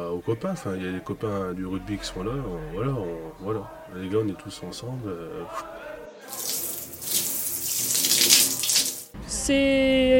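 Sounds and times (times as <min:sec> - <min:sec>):
speech: 0:00.2 - 0:06.4, 0:09.5 - 0:10.1
shower water spraying in team showers after a rugby match: 0:06.3 - 0:09.2.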